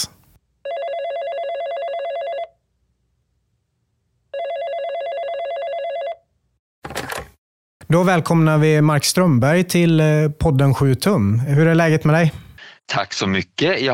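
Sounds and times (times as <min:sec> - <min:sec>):
telephone ringback tone during an outgoing call: 0:00.6 - 0:02.6, 0:04.3 - 0:06.2
speech: 0:07.9 - 0:13.9.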